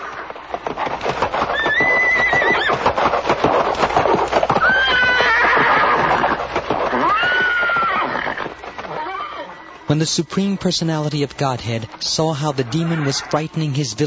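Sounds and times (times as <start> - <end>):
clatter of hooves: 0.0 - 14.0
horse neighing loudly: 1.6 - 2.8, 4.6 - 9.6, 12.6 - 13.5
speech: 9.9 - 14.0.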